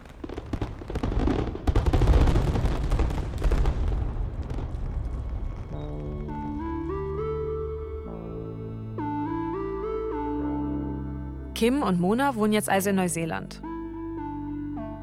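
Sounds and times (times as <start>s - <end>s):
fireworks display bursting and crackling in New Zealand: 0.0s - 6.6s
gentle melodic music passage: 5.7s - 15.0s
speech: 11.6s - 13.7s.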